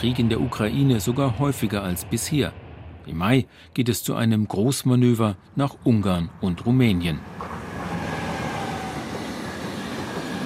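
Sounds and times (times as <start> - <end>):
speech: 0.0 - 7.6
heavy freight train carrying military goods rolling along the track: 0.0 - 10.4
faint metallic whine from freight train wheels: 7.2 - 10.4.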